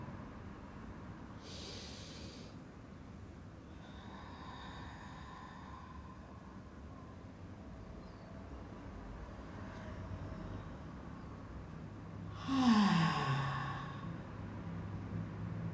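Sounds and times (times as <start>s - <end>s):
steady hiss: 0.0s - 15.6s
slow deep breathing with faintly whistling exhale: 1.4s - 2.6s, 3.7s - 7.3s, 12.3s - 14.4s.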